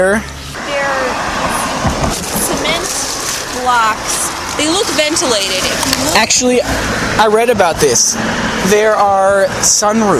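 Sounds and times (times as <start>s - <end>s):
speech: 0.0s - 0.4s, 3.6s - 10.1s
highway traffic roar: 0.0s - 10.1s
tire whine of passing vehicles: 0.0s - 10.1s.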